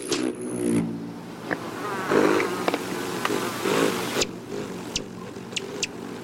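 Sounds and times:
rufous hummingbird wing buzz while hovering: 0.0 - 6.2
sharp high ticks: 1.4 - 6.2.

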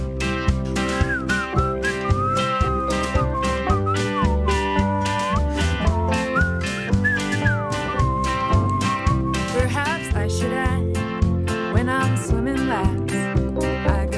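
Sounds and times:
backing track with thumping beat and sustained bass tones: 0.0 - 14.0
person whistling a gliding, wandering tune: 1.0 - 10.0.

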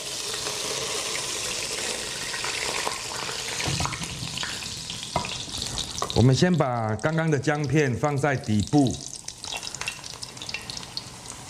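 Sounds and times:
duck pieces sizzling while pan-frying in a hot pan: 0.0 - 6.3, 8.5 - 11.4
speech: 6.2 - 9.1.

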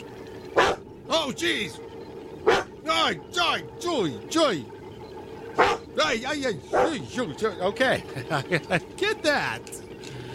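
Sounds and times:
dog barking: 0.6 - 0.8, 2.5 - 2.7, 5.6 - 5.8, 6.7 - 6.9
speech: 1.2 - 1.9, 2.8 - 4.8, 5.6 - 9.8
laughter: 7.9 - 9.0.

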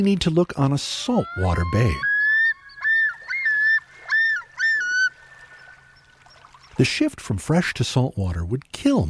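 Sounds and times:
speech: 0.0 - 2.1, 6.8 - 9.0
common loon calling: 1.0 - 6.4.

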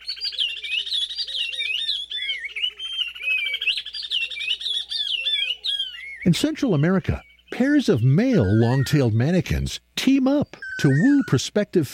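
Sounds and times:
male oriole warbler whistling varied phrases in Senegal: 0.0 - 6.3, 8.3 - 9.0, 10.5 - 11.4
speech: 6.2 - 11.9.

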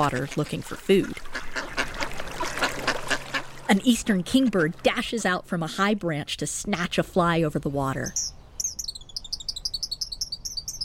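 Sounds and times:
speech: 0.0 - 1.6, 3.7 - 8.4
male song sparrows singing from a woody thicket along a river bank: 8.0 - 10.8.

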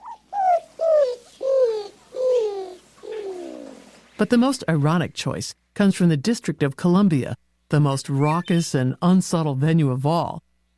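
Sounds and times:
Greater Roadrunner giving dovelike downward-sliding coos: 0.0 - 3.9
speech: 4.2 - 10.5.

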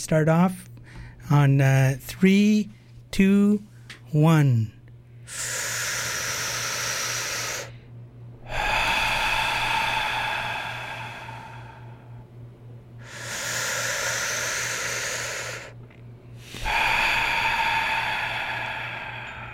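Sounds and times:
speech: 0.0 - 0.7, 1.3 - 5.6
group taking slow deep breaths in unison: 5.2 - 12.4, 13.0 - 19.5.

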